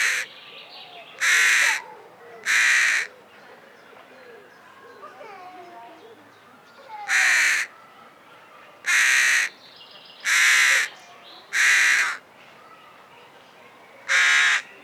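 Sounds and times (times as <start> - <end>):
carrion crow cawing: 0.0 - 0.3, 1.2 - 1.8, 2.4 - 3.1, 7.0 - 7.7, 8.9 - 9.5, 10.2 - 10.9, 11.5 - 12.2, 14.1 - 14.7
birdsong: 0.0 - 14.8.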